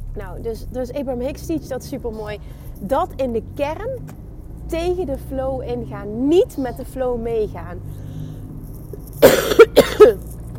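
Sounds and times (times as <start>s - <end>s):
speech: 0.2s - 8.0s, 9.2s - 10.3s
dry coughing from a tickle in the throat: 9.2s - 10.3s.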